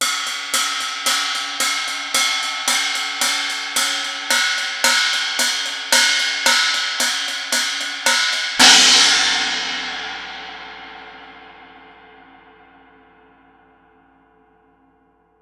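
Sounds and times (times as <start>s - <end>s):
18-inch China cymbal: 0.0s - 12.6s.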